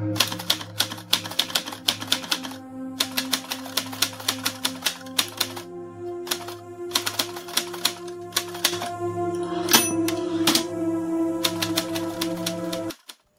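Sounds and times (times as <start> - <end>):
old typewriter keys clacking: 0.2 - 5.7, 6.3 - 8.9, 9.7 - 10.7, 11.5 - 13.3.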